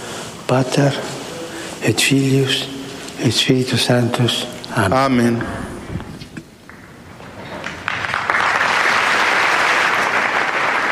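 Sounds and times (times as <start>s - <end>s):
speech: 0.5s - 1.2s, 1.8s - 5.7s
large crowd applauding: 6.7s - 10.8s.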